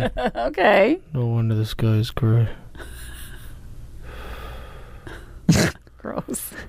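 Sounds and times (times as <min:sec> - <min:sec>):
speech: 0:00.0 - 0:03.0, 0:05.5 - 0:06.6
heavy raspy breathing close to the microphone: 0:04.0 - 0:05.5.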